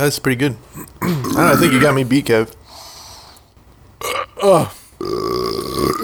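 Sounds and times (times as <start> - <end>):
speech: 0.0 - 2.6, 4.4 - 5.2
loud burp after chugging beer: 1.0 - 2.0, 4.0 - 6.0.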